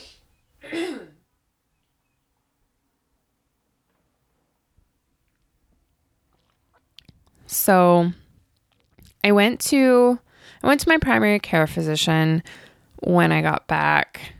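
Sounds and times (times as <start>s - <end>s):
loud throat-clearing: 0.6s - 1.2s
speech: 7.5s - 8.2s, 9.2s - 14.3s.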